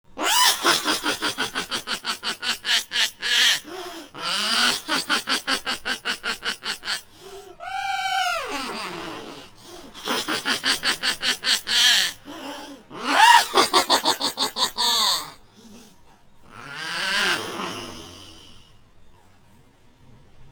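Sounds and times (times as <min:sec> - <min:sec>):
chipmunk-like laugh: 0:00.2 - 0:15.8.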